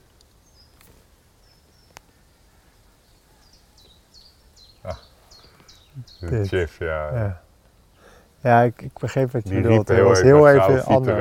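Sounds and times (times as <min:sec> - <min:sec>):
several birds chirping and whistling: 0:00.0 - 0:11.1
speech: 0:04.8 - 0:05.1, 0:06.0 - 0:07.4, 0:08.4 - 0:11.1.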